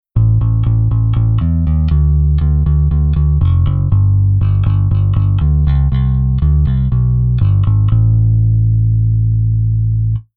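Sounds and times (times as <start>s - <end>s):
bass guitar played with fingers: 0.0s - 10.3s.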